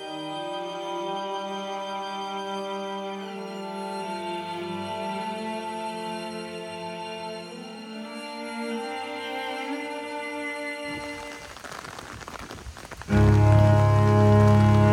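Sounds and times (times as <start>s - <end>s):
rain pattering outdoors: 10.8s - 14.9s.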